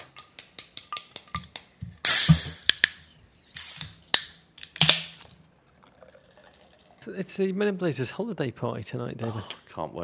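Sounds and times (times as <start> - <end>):
can of stout beer cracked open with fizzing hiss: 2.1 - 2.9, 3.6 - 3.9
sharp metallic clicks of a stout beer can: 2.1 - 3.0
speech: 7.1 - 10.0.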